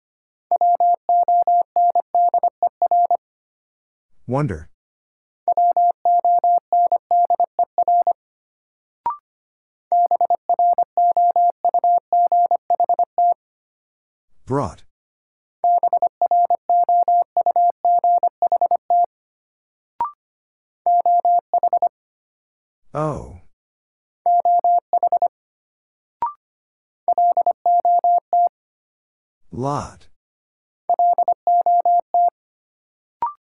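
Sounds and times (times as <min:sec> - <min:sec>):
Morse code beeps at 25wpm: 0:00.5 - 0:03.2, 0:05.5 - 0:08.2, 0:09.9 - 0:13.4, 0:15.7 - 0:19.1, 0:20.9 - 0:21.9, 0:24.3 - 0:25.3, 0:27.1 - 0:28.5, 0:30.9 - 0:32.3
person speaking a word: 0:14.5 - 0:14.8, 0:23.0 - 0:23.4, 0:29.5 - 0:30.1.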